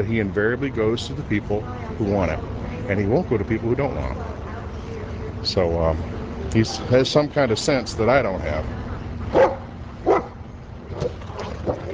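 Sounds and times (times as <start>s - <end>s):
speech: 0.0s - 4.4s, 5.4s - 9.6s
dogs barking outdoors: 9.3s - 11.9s.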